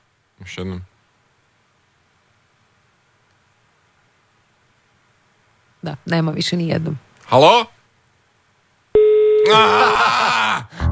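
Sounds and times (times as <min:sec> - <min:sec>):
speech: 0:00.4 - 0:00.9, 0:05.8 - 0:07.7, 0:09.5 - 0:10.2
telephone busy tone from a call placed from a radio studio: 0:09.0 - 0:09.6
laughter: 0:09.5 - 0:10.7.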